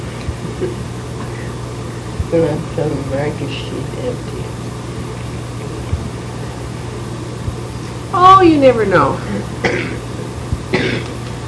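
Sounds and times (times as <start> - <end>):
low steady hum: 0.0 - 11.4
speech: 0.6 - 1.0, 2.3 - 4.6, 8.2 - 10.1, 10.7 - 11.1
person coughing harshly: 9.6 - 10.1, 10.7 - 11.2.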